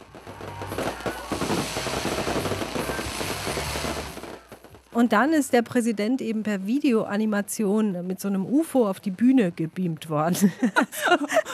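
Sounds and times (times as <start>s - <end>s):
fireworks crackling and popping at a beach party: 0.0s - 5.5s
faint crowd noise at a beach party: 0.0s - 8.5s
speech: 5.0s - 11.5s
laughter: 10.3s - 11.5s.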